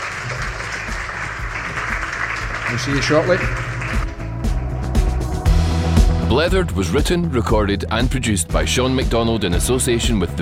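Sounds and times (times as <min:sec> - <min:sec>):
crowd clapping steadily: 0:00.0 - 0:05.3
speech: 0:02.7 - 0:03.7, 0:06.4 - 0:10.4.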